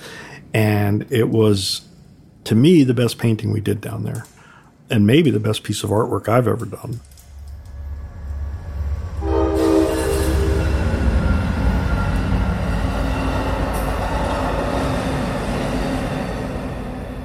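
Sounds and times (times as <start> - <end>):
speech: 0.6 - 7.2
train rumbling past: 7.4 - 17.2
rail cars clattering: 7.8 - 17.2
train horn blast: 9.1 - 14.0.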